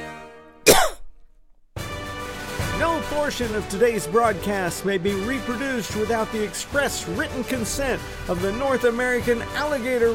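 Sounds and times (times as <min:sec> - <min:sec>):
dog coughing: 0:00.7 - 0:01.3
speech: 0:02.8 - 0:10.1.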